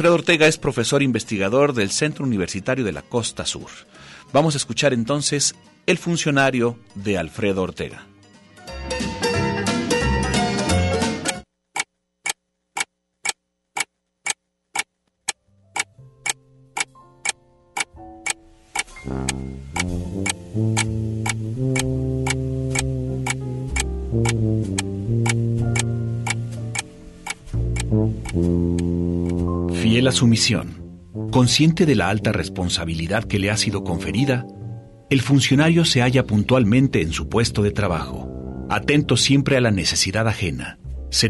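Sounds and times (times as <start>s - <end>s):
speech: 0.0s - 8.1s, 30.2s - 41.2s
music playing: 0.0s - 11.5s, 15.8s - 41.2s
clock hands ticking: 11.2s - 29.4s.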